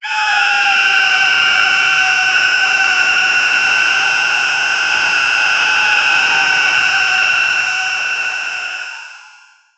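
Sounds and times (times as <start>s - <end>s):
bionic robotic scream: 0.0s - 9.4s.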